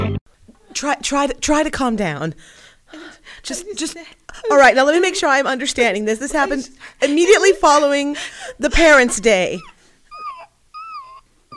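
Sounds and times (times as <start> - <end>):
speech: 0.8 - 2.6, 3.3 - 9.7
person imitating a new puppy's whimpering: 9.2 - 11.5.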